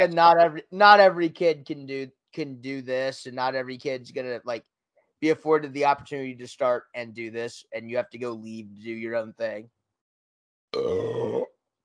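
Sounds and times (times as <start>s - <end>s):
speech: 0.0s - 9.8s, 10.7s - 11.5s
loud drawn-out burp after eating mac and cheese: 10.7s - 11.6s.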